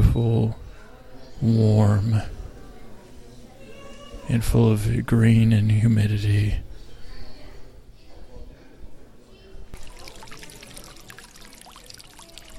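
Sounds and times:
murmur of voices: 0:00.0 - 0:12.5
speech: 0:01.4 - 0:02.4, 0:04.3 - 0:06.6
water splashing in a fountain in a flower conservatory: 0:09.8 - 0:12.5.

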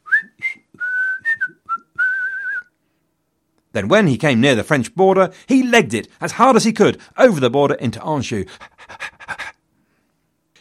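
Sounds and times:
person whistling a brief carefree tune: 0:00.0 - 0:02.8
speech: 0:03.8 - 0:09.1.

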